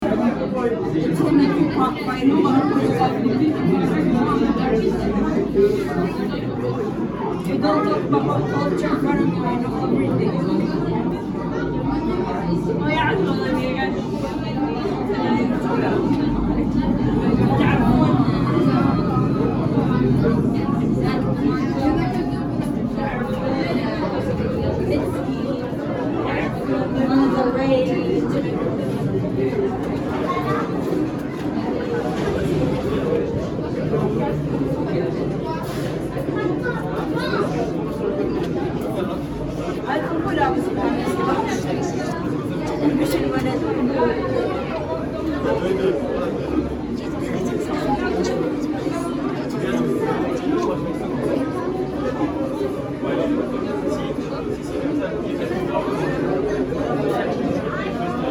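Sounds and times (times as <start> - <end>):
people in a queue: 0.0 - 58.2.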